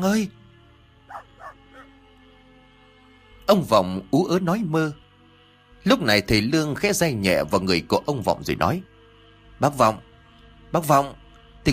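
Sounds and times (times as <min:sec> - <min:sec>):
speech: 0:00.0 - 0:00.4, 0:03.5 - 0:05.0, 0:05.8 - 0:08.9, 0:09.6 - 0:10.1, 0:10.7 - 0:11.7
dog barking while scratching the ground under a mango tree in a garden: 0:01.1 - 0:01.9.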